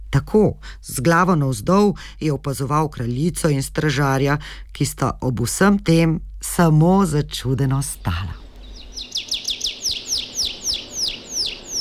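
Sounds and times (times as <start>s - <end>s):
speech: 0.1s - 8.4s
blue tit chirping call: 7.7s - 11.7s.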